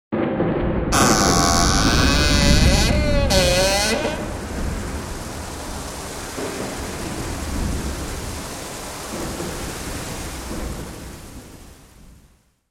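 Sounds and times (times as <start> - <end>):
thunder: 0.1 - 12.6
creaking door opening: 0.9 - 4.5.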